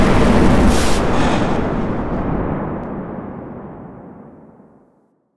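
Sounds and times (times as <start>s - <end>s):
dragon fire breath spell cast: 0.2s - 2.9s.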